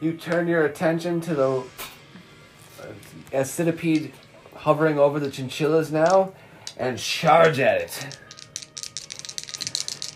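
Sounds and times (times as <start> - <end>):
speech: 0.0 - 2.0, 2.8 - 8.2
dice rattling and clattering: 5.2 - 6.8, 7.4 - 10.1.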